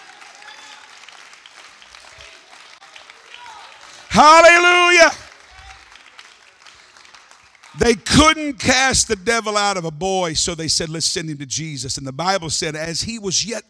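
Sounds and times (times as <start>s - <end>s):
church congregation clapping: 0.0s - 9.5s
loud voice shouting: 3.4s - 5.8s, 7.8s - 9.1s
speech: 4.2s - 5.2s, 7.8s - 13.6s.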